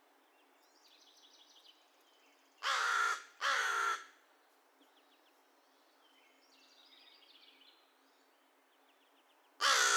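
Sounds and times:
American crow cawing: 0:02.6 - 0:04.1, 0:09.6 - 0:09.9.

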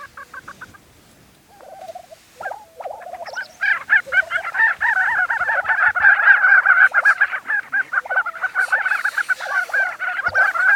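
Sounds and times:
lesser prairie chicken clucking, bubbling and cackling: 0:00.0 - 0:00.8, 0:01.5 - 0:10.7.

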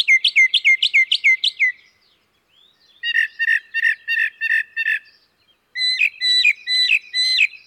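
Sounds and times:
northern mockingbird singing: 0:00.0 - 0:07.6.

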